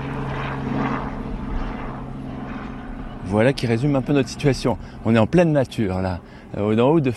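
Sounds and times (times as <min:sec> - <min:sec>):
helicopter engine and rotor drone overhead: 0:00.0 - 0:07.1
speech: 0:03.3 - 0:07.1.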